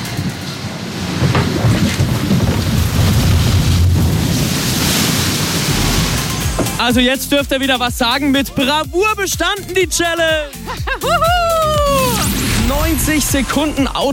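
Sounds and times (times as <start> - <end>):
log-flume boat plunging 20 meters down into water: 0.2 - 7.0
speech: 6.8 - 14.1
laughter: 10.4 - 12.1.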